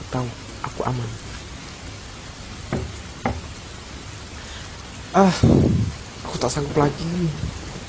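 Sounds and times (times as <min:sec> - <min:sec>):
steady low hiss: 0:00.0 - 0:07.8
speech: 0:00.1 - 0:01.3, 0:05.2 - 0:07.6
sharp knocks: 0:02.7 - 0:03.5.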